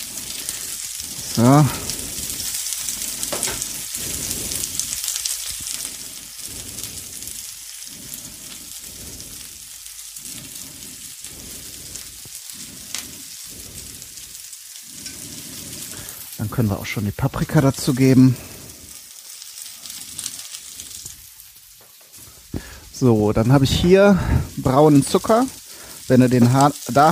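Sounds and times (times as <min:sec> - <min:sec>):
large onions roasting and sizzling in a pan: 0:00.0 - 0:27.1
speech: 0:01.4 - 0:01.8, 0:16.6 - 0:18.5, 0:23.0 - 0:27.1.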